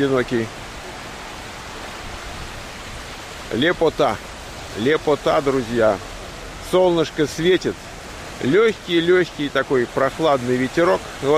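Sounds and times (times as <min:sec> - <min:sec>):
speech: 0:00.0 - 0:00.6, 0:03.5 - 0:06.1, 0:06.7 - 0:11.3
ocean waves breaking: 0:00.0 - 0:11.3.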